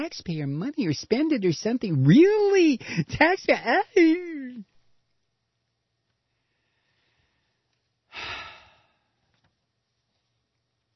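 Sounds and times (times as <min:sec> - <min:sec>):
speech: 0:00.0 - 0:04.7
deep breath: 0:06.3 - 0:09.3.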